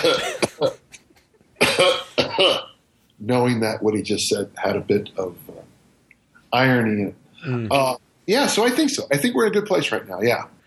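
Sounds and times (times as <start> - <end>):
man coughing: 0.0 - 0.8, 1.6 - 2.8
speech: 0.0 - 0.8, 3.2 - 5.7, 6.5 - 10.6.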